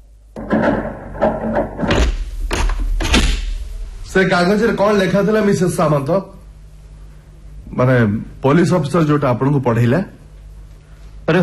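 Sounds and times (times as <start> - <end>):
door being closed with heavy thuds and knocks: 0.4 - 3.8
speech: 4.2 - 6.4, 7.8 - 10.2, 11.3 - 11.4.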